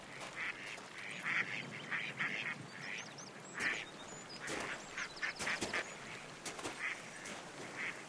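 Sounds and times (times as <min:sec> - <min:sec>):
flowing water of a stream: 0:00.0 - 0:08.0
ducks quacking on a stream: 0:00.1 - 0:08.0.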